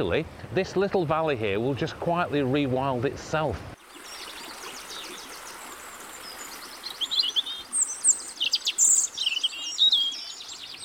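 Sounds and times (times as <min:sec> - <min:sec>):
speech: 0:00.0 - 0:03.8
mixed songbirds with robin, blackbird and wren trilling and chirping: 0:03.8 - 0:10.8.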